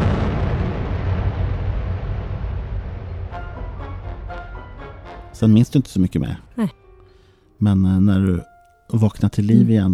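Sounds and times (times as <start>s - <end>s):
deafening explosion with a deep rumbling roar: 0.0s - 3.7s
speech: 5.4s - 6.8s, 7.6s - 9.9s.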